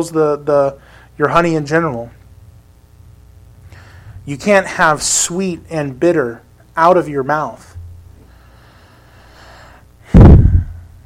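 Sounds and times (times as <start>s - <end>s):
speech: 0.0s - 2.2s, 4.2s - 7.7s
heavy breath pushed into a close microphone: 0.8s - 1.2s, 3.6s - 4.3s, 8.2s - 10.9s.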